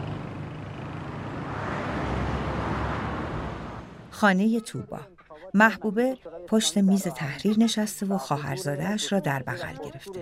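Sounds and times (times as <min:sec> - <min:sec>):
car passing on a highway: 0:00.0 - 0:04.2
speech: 0:04.2 - 0:10.2.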